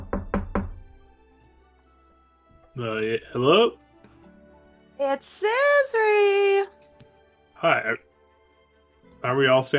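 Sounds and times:
soft knocks on a door: 0:00.0 - 0:01.0
speech: 0:02.8 - 0:03.8, 0:05.0 - 0:06.8, 0:07.6 - 0:08.1, 0:09.2 - 0:09.7.

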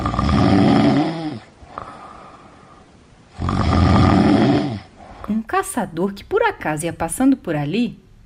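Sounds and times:
loud snoring: 0:00.0 - 0:02.4, 0:03.3 - 0:05.0
quiet breath: 0:01.1 - 0:03.2, 0:04.6 - 0:05.5
speech: 0:05.8 - 0:08.0.

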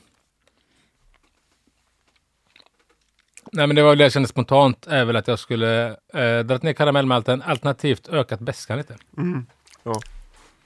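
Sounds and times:
chewing food with crunching bites: 0:00.0 - 0:03.6, 0:08.8 - 0:10.6
speech: 0:03.5 - 0:10.2.

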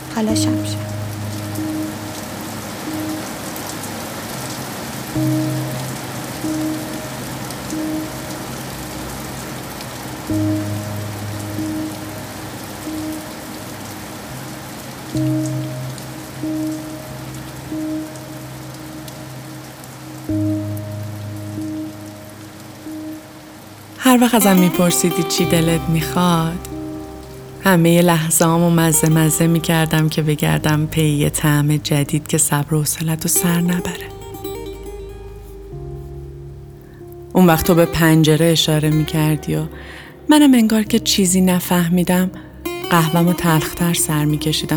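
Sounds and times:
steady rain pattering on a hard surface: 0:00.0 - 0:25.2
soft low tonal music: 0:00.0 - 0:44.7
speech: 0:00.2 - 0:00.8, 0:24.2 - 0:26.7, 0:27.6 - 0:34.2, 0:37.4 - 0:44.7.

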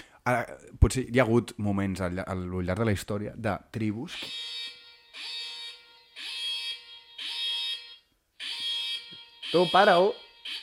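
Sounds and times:
speech: 0:00.2 - 0:04.6, 0:09.5 - 0:10.6
harsh buzzing home alarm tone through a mobile phone: 0:04.1 - 0:10.6.

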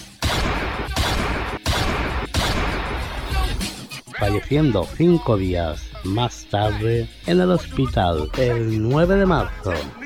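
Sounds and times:
gunshots in a shooting attack: 0:00.0 - 0:03.5
speech: 0:04.2 - 0:10.0.

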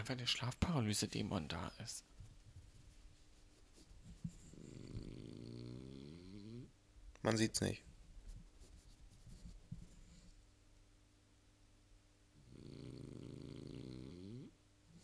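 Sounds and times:
speech: 0:00.0 - 0:02.1, 0:07.2 - 0:07.9
rumbling snoring: 0:04.5 - 0:06.7, 0:12.4 - 0:15.0.

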